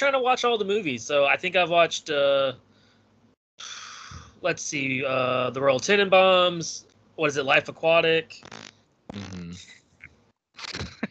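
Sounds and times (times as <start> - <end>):
speech: 0.0 - 2.7, 3.6 - 3.8, 4.4 - 9.8
buzzy raspberry blown with the lips: 3.6 - 4.3, 8.4 - 9.8.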